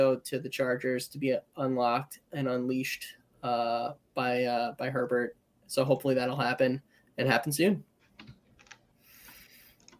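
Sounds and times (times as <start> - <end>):
speech: 0.0 - 8.4
rapid typing on a computer keyboard: 8.2 - 8.8.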